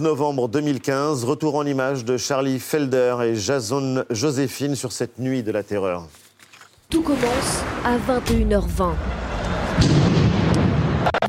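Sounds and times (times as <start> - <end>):
speech: 0.0 - 6.2, 6.9 - 10.0
heavy boom of a bomb exploding: 7.6 - 11.0.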